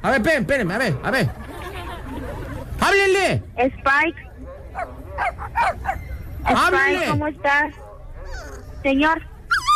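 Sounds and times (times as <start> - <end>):
speech: 0.0 - 1.4, 2.8 - 4.2, 4.8 - 7.8, 8.8 - 9.3
laughter: 1.1 - 2.8
German shepherd puppy whining: 8.2 - 8.8, 9.4 - 9.7.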